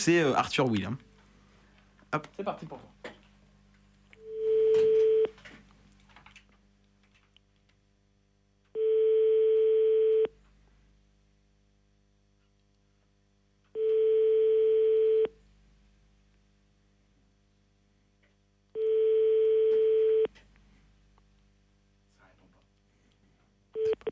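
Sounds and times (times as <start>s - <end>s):
speech: 0.0s - 1.1s, 2.1s - 3.0s
faint low hum: 0.0s - 24.1s
telephone ringback tone while calling a number back: 4.2s - 5.3s, 8.8s - 10.3s, 13.8s - 15.3s, 18.8s - 20.3s.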